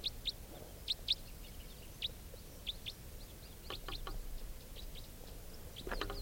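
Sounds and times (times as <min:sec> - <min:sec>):
wild bird chirping: 0:00.0 - 0:06.2
wild bird clicking calls: 0:03.6 - 0:04.2, 0:05.8 - 0:06.2.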